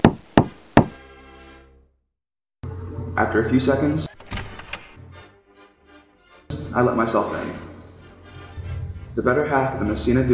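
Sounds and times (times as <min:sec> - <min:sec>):
knocking on the door of a room beside a hockey team's dressing room: 0:00.0 - 0:01.0
speech: 0:03.2 - 0:04.1, 0:06.8 - 0:07.7, 0:09.2 - 0:10.3.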